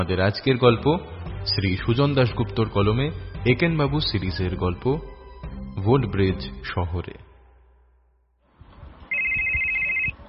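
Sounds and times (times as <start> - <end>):
speech: 0.0 - 5.1, 5.8 - 7.3
telephone electronic ringtone: 9.1 - 10.2.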